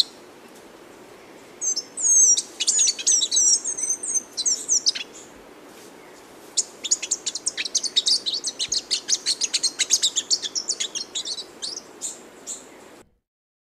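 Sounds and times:
magpie tanager song of fast high chirps: 1.6s - 5.3s, 6.6s - 12.7s.

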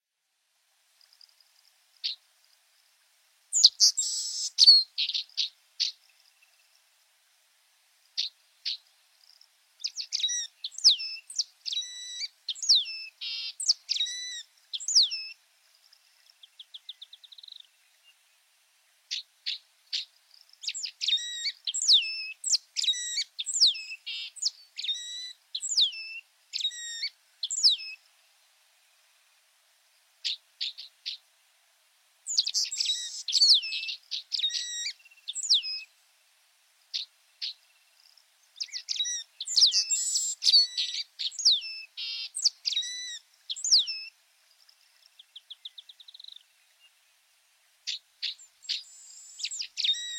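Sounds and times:
white-browed meadowlark singing: 3.5s - 6.8s, 8.2s - 18.4s, 19.1s - 28.1s, 32.3s - 35.9s, 36.9s - 47.2s, 47.8s - 50.1s.

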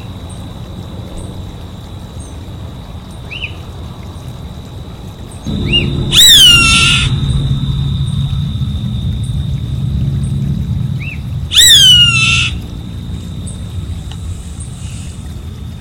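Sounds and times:
savanna hawk harsh raspy descending scream: 5.5s - 15.1s
constant high-pitched drone: 5.5s - 15.7s
soft arched chirps: 5.5s - 15.7s.

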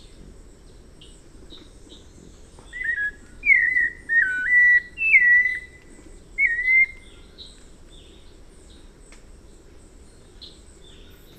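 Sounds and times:
White-necked Thrush singing a string of clear whistled notes: 2.6s - 7.3s.

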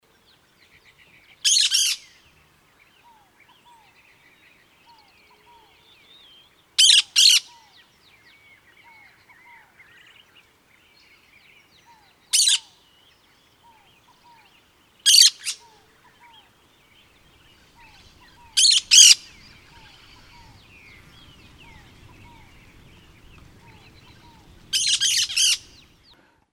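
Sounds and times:
caatinga parakeet singing: 1.4s - 2.1s, 6.8s - 7.5s, 12.4s - 12.7s, 15.1s - 15.6s, 17.8s - 22.5s, 23.7s - 26.0s.

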